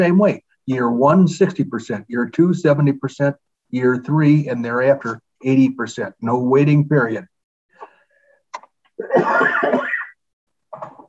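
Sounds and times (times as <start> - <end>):
speech: 0.0 - 7.3, 9.0 - 9.8
person having a harsh coughing fit: 9.0 - 10.2.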